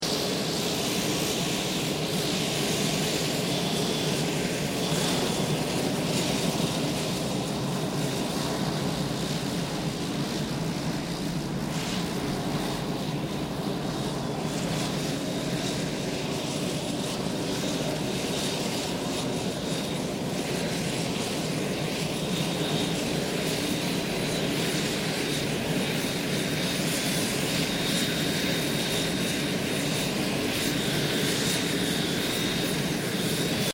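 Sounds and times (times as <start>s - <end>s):
unidentified turboprop aircraft engine idling: 0.1s - 33.7s.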